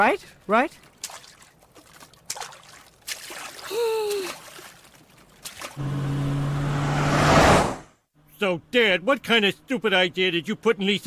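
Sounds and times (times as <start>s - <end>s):
speech: 0.0s - 0.9s, 8.4s - 11.0s
choppy water slapping and splashing around a boat: 0.8s - 5.8s
low engine hum: 5.8s - 7.8s.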